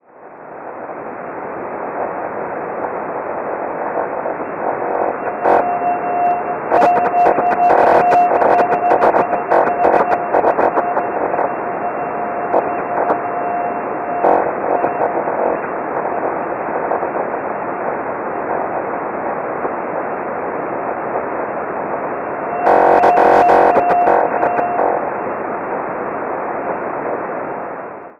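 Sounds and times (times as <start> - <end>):
SNOTEL radio signal at 40.530 MHz: 0.0 - 28.1.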